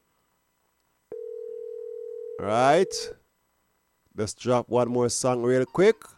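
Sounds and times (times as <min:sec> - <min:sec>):
telephone dial tone: 0:01.1 - 0:02.4
speech: 0:02.4 - 0:03.2, 0:04.2 - 0:06.1.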